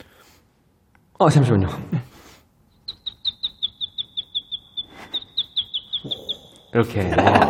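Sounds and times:
speech: 0:01.2 - 0:02.1, 0:06.8 - 0:07.4
person imitating bird chirping with high whistled chirps: 0:02.8 - 0:07.4.

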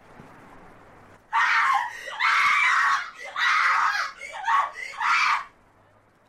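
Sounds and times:
person screaming in long drawn-out wails from a building across the street: 0:01.4 - 0:05.5.

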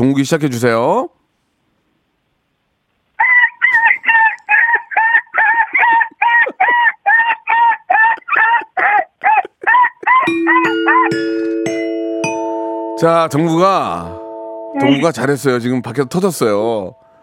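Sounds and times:
speech: 0:00.0 - 0:01.2, 0:11.0 - 0:11.9, 0:13.0 - 0:14.2, 0:14.8 - 0:17.0
laughter: 0:03.2 - 0:11.4
person imitating a baby puppy crying sorrowfully: 0:08.5 - 0:11.2, 0:14.8 - 0:15.1
bright ringing chime of rising tones: 0:10.3 - 0:17.2.

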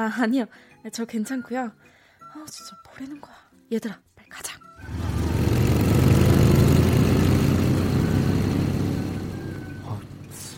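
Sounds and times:
speech: 0:00.0 - 0:05.0
motorcycle engine revving as the bike speeds away: 0:04.8 - 0:10.5.

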